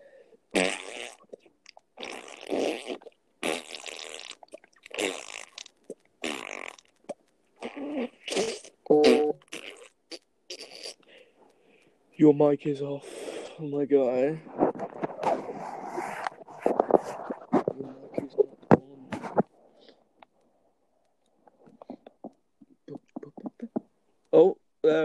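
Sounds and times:
person blowing wet sputtering mouth fart noises: 0.5 - 1.4, 2.0 - 11.1, 14.4 - 19.5
speech: 12.2 - 14.6.

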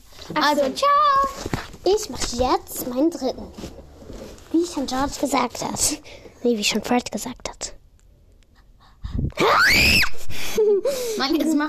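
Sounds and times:
speech: 0.3 - 3.7, 4.5 - 7.3, 11.2 - 11.6
person giving a high-pitched shrieking scream: 9.4 - 10.2.

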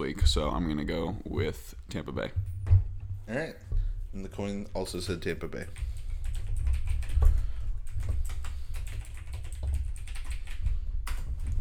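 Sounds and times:
speech: 0.0 - 5.9
fingers typing on a computer keyboard into a spreadsheet: 5.6 - 11.6.

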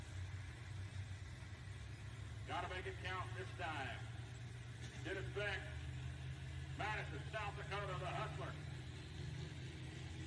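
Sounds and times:
pulling tractor engine idling: 0.0 - 10.1
speech: 2.5 - 4.1, 4.8 - 5.8, 6.8 - 8.7.

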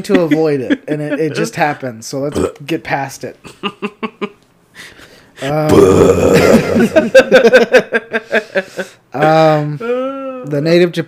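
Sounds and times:
laughter: 0.0 - 1.6, 6.4 - 9.0
speech: 0.0 - 4.2, 5.4 - 11.0
loud burp into the microphone: 2.3 - 2.6, 5.5 - 6.9.

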